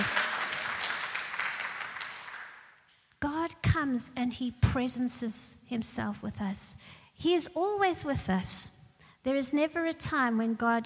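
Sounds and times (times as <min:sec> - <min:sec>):
people cheering: 0:00.0 - 0:02.4
crowd applauding: 0:00.0 - 0:02.8
speech: 0:03.8 - 0:10.8.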